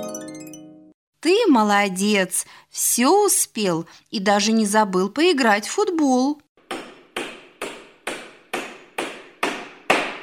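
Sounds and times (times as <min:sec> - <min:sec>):
speech: 0:01.2 - 0:06.4
hammer knocking: 0:06.6 - 0:10.2.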